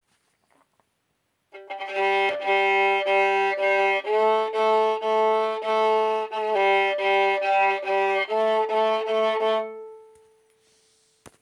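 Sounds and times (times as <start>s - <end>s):
G string: 1.6s - 10.3s.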